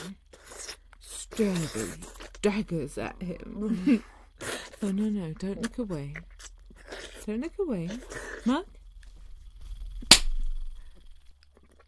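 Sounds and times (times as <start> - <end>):
faint low rumble: 0.2 - 11.8
speech: 1.3 - 6.4, 7.2 - 8.8
sharp slap: 10.1 - 10.6.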